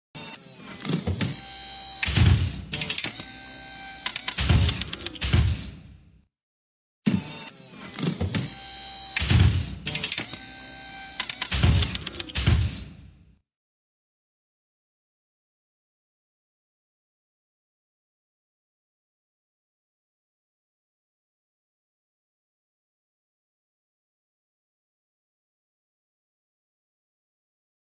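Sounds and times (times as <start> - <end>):
robot turning: 0.2 - 5.8, 7.1 - 12.9.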